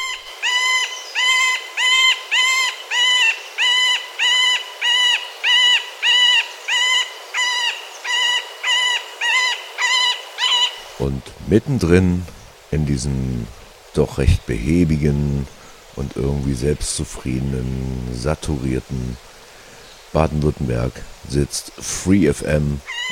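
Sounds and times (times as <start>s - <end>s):
Middle Spotted Woodpecker quacking calls: 0.0s - 10.8s, 22.8s - 23.0s
speech: 11.0s - 19.3s, 20.1s - 23.0s.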